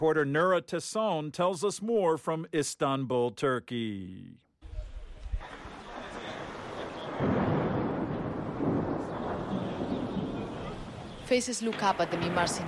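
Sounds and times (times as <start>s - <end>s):
speech: 0.0s - 4.4s, 11.3s - 12.6s
thunder rumbling under dark clouds at a soccer stadium: 4.6s - 12.6s
broad wind-like roar and hiss: 4.7s - 11.3s.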